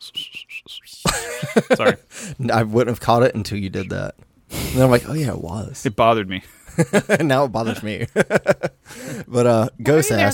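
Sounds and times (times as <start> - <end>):
person whistling short high notes: 0.0 - 1.1
laughter: 1.1 - 2.0, 6.6 - 9.0
speech: 1.6 - 10.3
loud breathy burst of noise: 4.5 - 5.2.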